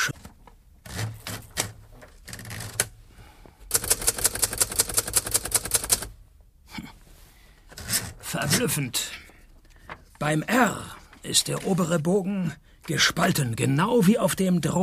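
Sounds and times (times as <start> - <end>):
typing on a typewriter: 3.7 - 6.1
speech: 8.4 - 9.2, 10.2 - 14.8.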